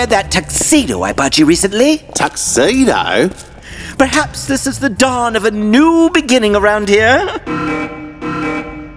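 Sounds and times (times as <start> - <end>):
speech: 0.0 - 8.0
warehouse security alarm buzzing in harsh rasping pulses: 7.4 - 8.9.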